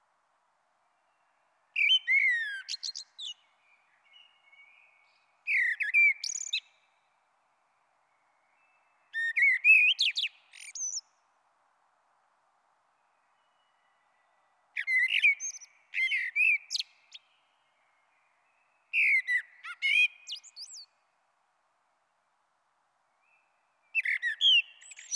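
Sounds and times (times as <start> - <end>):
common blackbird singing melodious whistled phrases with high chattering twitters: 1.2 - 7.0, 8.1 - 11.2, 13.0 - 21.0, 23.3 - 25.1.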